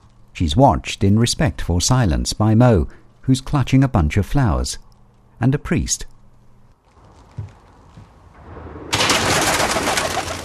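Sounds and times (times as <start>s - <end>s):
speech: 0.4s - 4.8s, 5.4s - 6.1s
soft thuds: 7.0s - 8.5s
pigeons flapping wings taking off from a rooftop: 8.9s - 10.4s.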